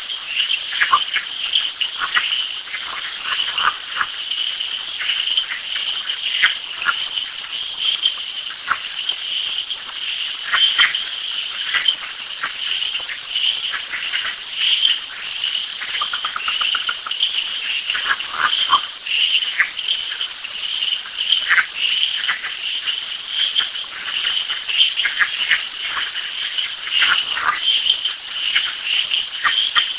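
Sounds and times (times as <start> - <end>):
Agalychnis callydrias calling: 0.0 - 29.9.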